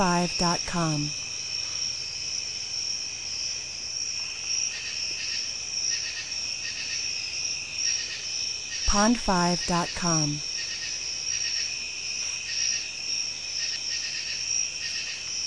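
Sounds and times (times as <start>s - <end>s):
speech: 0.0s - 1.2s, 8.9s - 10.5s
high ringing trill of night insects and cicadas: 0.0s - 15.4s.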